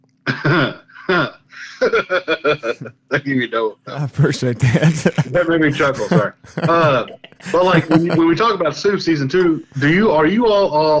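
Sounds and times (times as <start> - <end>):
laughter: 0.4 - 2.9, 4.0 - 8.6
speech: 0.4 - 10.9
loud rough throat clearing: 4.6 - 6.0.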